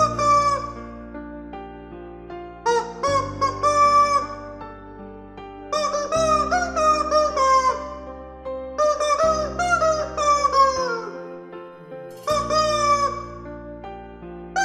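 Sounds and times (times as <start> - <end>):
plastic toy chicken squawking a rhapsody: 0.0 - 0.8, 2.7 - 4.4, 5.8 - 7.9, 8.8 - 11.2, 12.2 - 13.4
sustained backing melody: 0.0 - 14.6.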